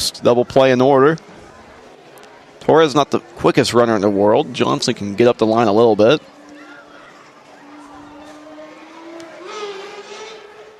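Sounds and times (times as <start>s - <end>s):
speech: 0.1s - 1.3s, 2.6s - 6.4s
motorcycle engine revving: 6.4s - 10.7s.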